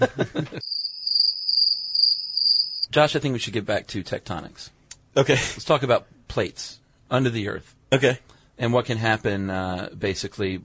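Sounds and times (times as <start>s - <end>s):
laughter: 0.0s - 0.6s
speech: 0.0s - 0.6s, 2.9s - 10.6s
cricket chirping sound effect: 0.6s - 2.9s.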